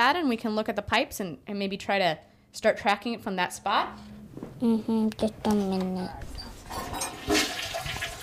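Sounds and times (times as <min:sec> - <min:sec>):
speech: 0:00.1 - 0:07.4
toilet flushing: 0:06.7 - 0:08.2.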